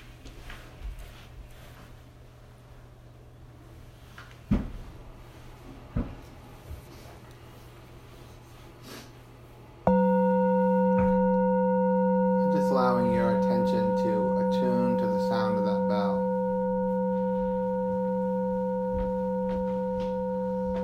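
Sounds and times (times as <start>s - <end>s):
meditation bell ringing: 9.9s - 20.8s
person speaking: 12.2s - 16.5s.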